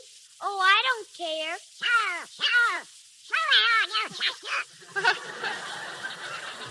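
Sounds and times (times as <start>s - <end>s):
raspy squawking cartoon duck voice quacking: 0.0s - 4.8s
speech: 0.4s - 6.3s
laughter: 4.1s - 6.6s.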